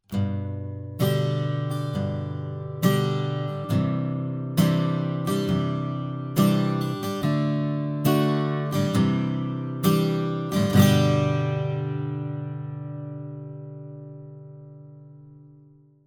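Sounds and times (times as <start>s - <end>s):
acoustic guitar recorded with AKG C414 microphone in cardioid pattern: 0.0s - 16.0s.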